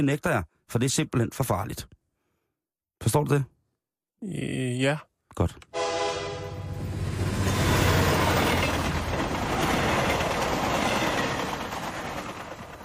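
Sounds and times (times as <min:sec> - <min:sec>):
speech: 0:00.0 - 0:02.0, 0:03.0 - 0:03.5, 0:04.2 - 0:05.8
sustained horn-like tone: 0:05.7 - 0:06.8
train rolling along the rails: 0:06.8 - 0:12.8.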